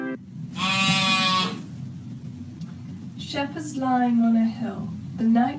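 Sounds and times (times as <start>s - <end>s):
low rumble of noise: 0.1s - 5.5s
sheep bleating: 0.5s - 1.6s
speech: 3.3s - 5.5s.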